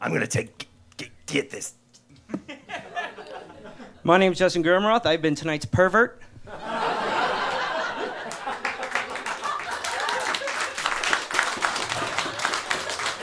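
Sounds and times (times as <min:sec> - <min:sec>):
speech: 0:00.0 - 0:00.7, 0:01.3 - 0:01.8, 0:04.0 - 0:06.3
audience laughter: 0:02.5 - 0:04.0, 0:06.5 - 0:13.2
live audience applause: 0:07.5 - 0:13.2.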